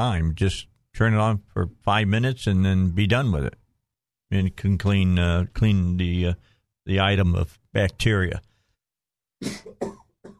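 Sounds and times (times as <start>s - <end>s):
speech: 0.0s - 3.6s, 4.3s - 8.5s, 9.4s - 10.0s
harsh coughs: 9.4s - 10.3s.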